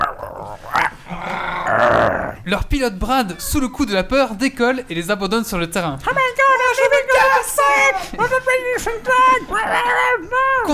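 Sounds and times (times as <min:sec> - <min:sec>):
dogs growling and snarling: 0:00.0 - 0:02.4
speech: 0:02.5 - 0:10.7.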